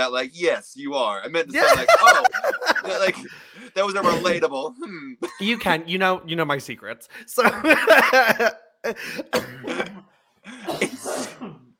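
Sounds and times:
speech: 0.0 - 11.6
laughter: 1.5 - 4.3, 7.4 - 9.1
person clearing their throat: 4.0 - 5.4, 8.9 - 11.7
person coughing: 4.0 - 5.4, 7.6 - 11.7.

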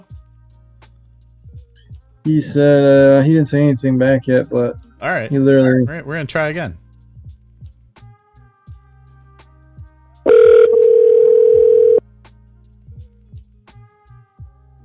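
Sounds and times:
speech: 2.2 - 6.8
ringback tone from an outgoing phone call: 10.3 - 12.0.

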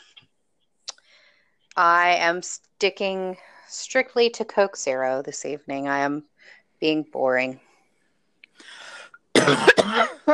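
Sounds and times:
speech: 1.8 - 7.6, 9.5 - 10.3
person coughing: 9.4 - 10.3.

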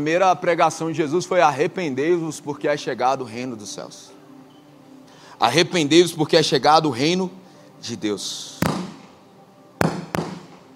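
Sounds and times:
speech: 0.0 - 4.2, 5.4 - 8.8
gunshots outdoors: 8.6 - 9.0, 9.8 - 10.6.

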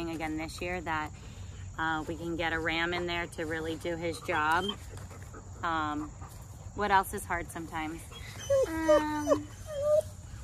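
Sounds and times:
speech: 0.2 - 5.0, 5.6 - 6.2, 6.8 - 9.9
young female puppy whimpering and howling on a homestead: 8.1 - 10.2.

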